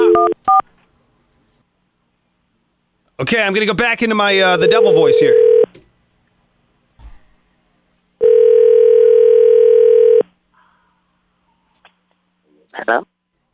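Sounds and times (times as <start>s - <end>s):
speech: 3.2s - 5.4s, 12.8s - 13.1s
telephone dial tone while calling back: 4.6s - 5.7s, 8.2s - 10.2s.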